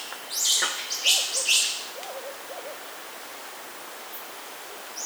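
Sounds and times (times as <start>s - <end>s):
tree hyrax song: 0.4s - 2.8s.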